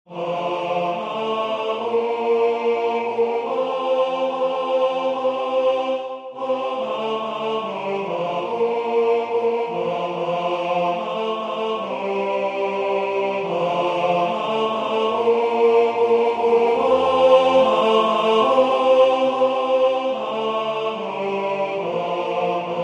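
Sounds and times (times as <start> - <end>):
tenor singing: 0.1 - 22.8.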